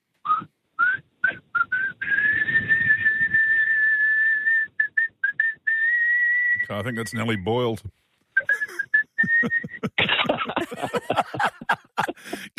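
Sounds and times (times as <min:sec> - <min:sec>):
man whistling a song tune: 0:00.3 - 0:07.4, 0:08.4 - 0:10.0
speech: 0:06.7 - 0:08.0, 0:10.7 - 0:12.5
laughter: 0:08.4 - 0:12.5.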